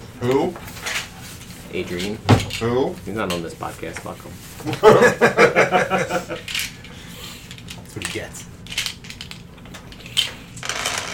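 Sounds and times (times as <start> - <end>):
speech: 0.2 - 0.8, 1.7 - 6.7
laughter: 4.6 - 6.4
dice rattling and clattering as they are shuffled and tumbled: 7.5 - 11.1.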